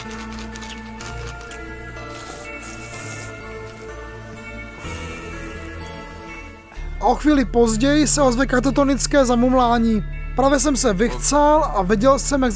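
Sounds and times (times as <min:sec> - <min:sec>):
liquid swirling and sloshing in a small vial: 0:00.0 - 0:04.0
speech: 0:07.0 - 0:12.5.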